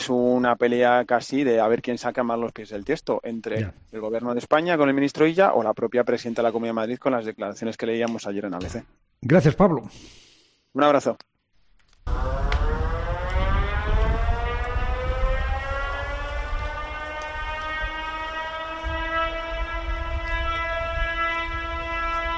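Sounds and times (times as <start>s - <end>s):
speech: 0.0s - 11.3s, 12.0s - 12.6s
Venice high-water warning siren wailing: 12.0s - 22.3s.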